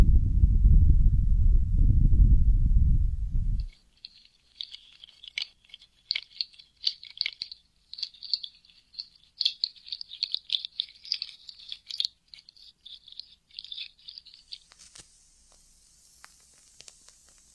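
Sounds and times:
heavy muffled low rumble: 0:00.0 - 0:03.7
bright crisp crackling: 0:03.7 - 0:17.5
faint high hiss: 0:14.3 - 0:17.5.

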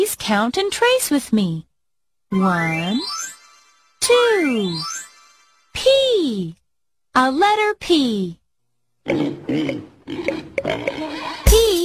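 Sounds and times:
speech: 0:00.0 - 0:01.7, 0:02.3 - 0:03.2, 0:04.0 - 0:05.0, 0:05.8 - 0:06.6, 0:07.2 - 0:08.4, 0:09.0 - 0:11.3
pig oinking in short nasal grunts: 0:09.0 - 0:11.5.

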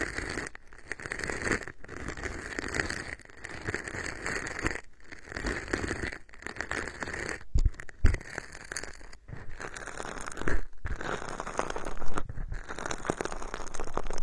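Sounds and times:
popping candy fizzing and crackling: 0:00.0 - 0:14.2.

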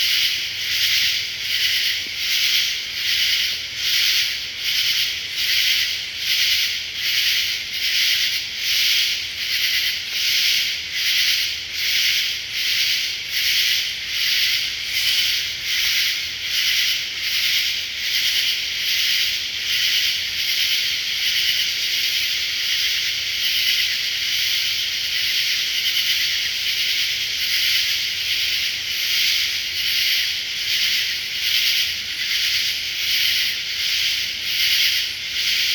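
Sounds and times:
dense night insect chorus in Nantahala National Forest: 0:00.0 - 0:35.7.

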